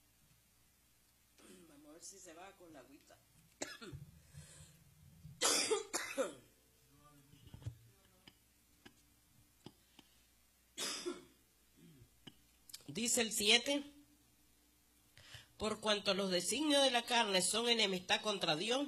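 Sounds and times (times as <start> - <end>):
person coughing: 1.4 - 1.8, 3.6 - 4.0, 5.4 - 6.5, 10.8 - 12.1
speech: 2.0 - 4.1, 13.0 - 14.0, 15.6 - 18.8
throat clearing: 10.8 - 12.4.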